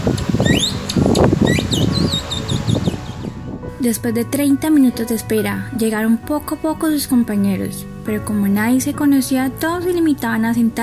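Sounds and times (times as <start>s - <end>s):
strong gusty morning wind near a school classroom: 0.0s - 4.1s
speech: 0.1s - 0.9s, 3.8s - 10.8s
several birds chirping near a school classroom: 0.4s - 3.4s.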